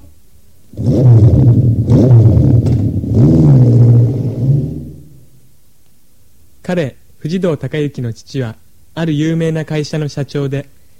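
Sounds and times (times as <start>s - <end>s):
motorcycle carrying two riders revving and speeding away: 0.7s - 5.3s
speech: 6.7s - 10.8s.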